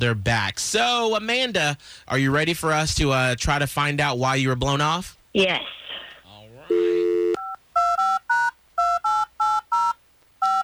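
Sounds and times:
speech: 0.0s - 5.8s
dual-tone beeps of a telephone number dialed on a keypad: 6.7s - 10.6s.

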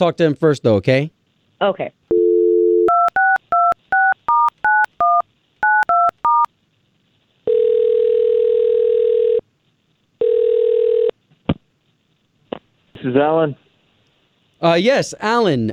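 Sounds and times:
speech: 0.0s - 2.0s, 13.0s - 13.6s, 14.6s - 15.7s
telephone dial tone: 2.1s - 6.5s, 7.5s - 9.4s, 10.2s - 11.1s.

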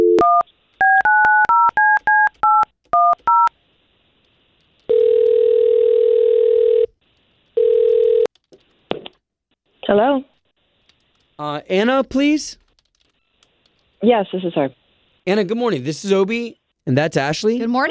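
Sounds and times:
telephone dual-tone keypad beeps dialing a number: 0.0s - 3.5s
telephone ringback tones: 4.9s - 6.9s, 7.6s - 8.3s
speech: 11.7s - 12.6s, 14.0s - 17.8s.

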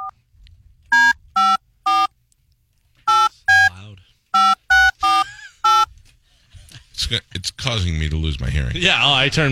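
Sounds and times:
telephone touch-tone dialing beeps: 0.9s - 2.1s, 3.1s - 3.7s, 4.4s - 5.9s
speech: 7.1s - 9.4s.

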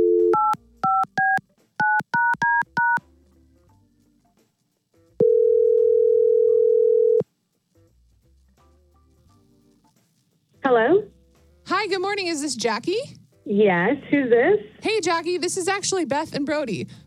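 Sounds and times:
telephone dial tone: 0.0s - 3.0s, 5.2s - 7.2s
telephone touch-tone dialing beeps: 0.0s - 3.0s
speech: 12.1s - 17.0s.

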